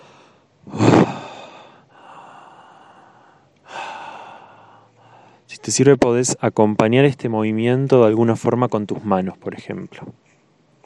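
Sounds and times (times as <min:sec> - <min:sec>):
slow breathing in and out during a guided breathing exercise: 0:00.0 - 0:05.5
speech: 0:05.6 - 0:10.2.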